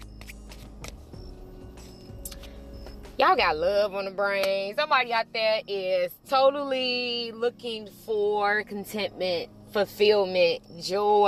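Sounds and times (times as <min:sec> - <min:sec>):
deck of tarot cards being shuffled: 0:00.0 - 0:01.1
speech: 0:03.2 - 0:11.2.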